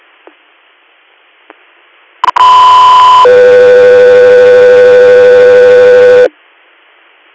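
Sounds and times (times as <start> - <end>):
radio dispatch paging tones: 2.2 - 6.3.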